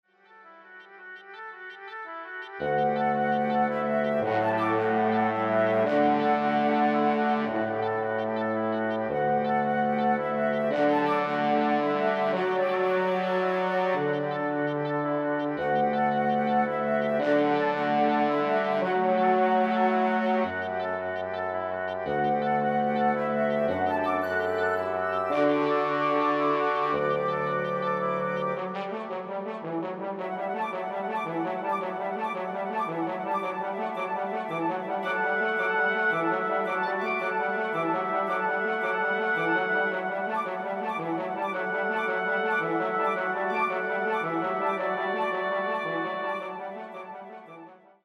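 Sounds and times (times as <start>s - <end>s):
woodwind quintet playing: 0.6s - 48.0s.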